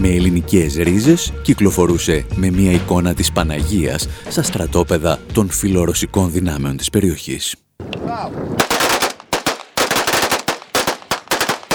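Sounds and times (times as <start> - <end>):
speech: 0.0 - 8.6
automatic gunfire from rebels firing weapons in a salute: 8.6 - 11.7.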